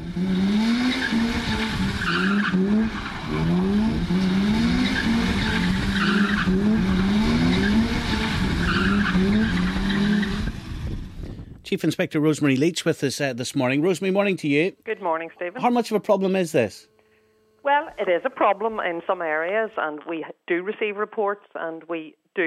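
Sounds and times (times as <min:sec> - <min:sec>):
car engine revving: 0:00.0 - 0:11.3
speech: 0:00.2 - 0:00.6, 0:11.7 - 0:16.9, 0:17.6 - 0:22.4
car tyres skidding and squealing doing diffs and doughnuts: 0:00.2 - 0:10.8.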